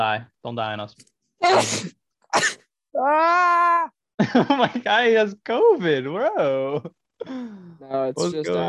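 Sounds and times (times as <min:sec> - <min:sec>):
speech: 0:00.0 - 0:08.6
person sneezing from pollen allergies: 0:01.4 - 0:02.6.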